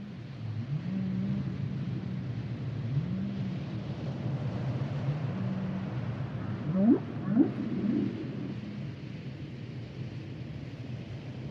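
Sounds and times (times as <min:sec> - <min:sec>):
male humpback whale low hums: 0:00.0 - 0:09.9
heavy low rumbling background noise: 0:00.0 - 0:11.4
humpback whale sharp rising whoops: 0:06.5 - 0:08.8.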